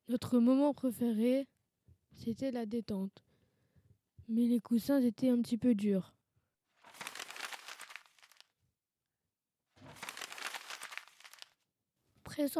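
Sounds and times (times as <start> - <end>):
speech: 0.1 - 1.5, 2.1 - 3.3, 4.3 - 6.2, 12.4 - 12.5
paper being crumpled: 6.8 - 8.4, 9.8 - 11.6.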